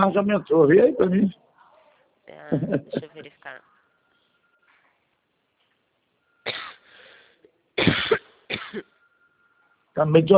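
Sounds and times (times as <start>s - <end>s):
speech: 0.0s - 1.4s, 2.3s - 3.7s, 7.8s - 8.9s, 10.0s - 10.3s
laughter: 2.4s - 3.4s
harsh coughs with a rasping breathy tail: 6.4s - 6.9s, 7.8s - 8.9s.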